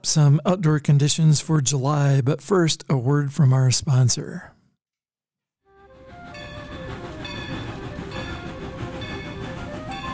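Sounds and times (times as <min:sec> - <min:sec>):
speech: 0:00.0 - 0:04.6
historic steam train rolling along railroad tracks: 0:06.2 - 0:10.1.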